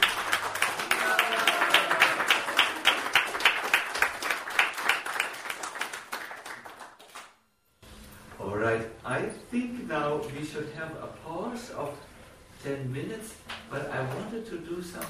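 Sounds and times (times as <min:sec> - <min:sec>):
audience applause: 0:00.0 - 0:07.3
speech: 0:09.5 - 0:15.0.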